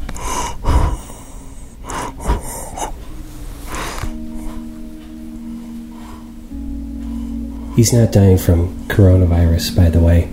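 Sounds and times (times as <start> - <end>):
labored breathing of a dying 94-year-old man with heart failure in a nursing home: 0.0 - 7.8
low electrical hum: 0.0 - 10.3
speech: 7.8 - 10.3.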